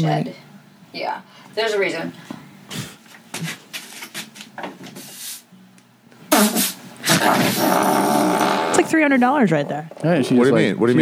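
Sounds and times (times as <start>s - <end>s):
speech: 0.0s - 2.8s, 8.9s - 10.9s
farting sounds from an online video: 6.3s - 9.0s.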